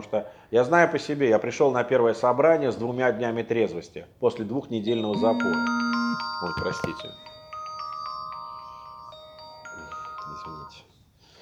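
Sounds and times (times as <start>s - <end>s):
speech: 0.1s - 7.3s
mobile phone ringtone with electronic melody: 5.0s - 10.7s.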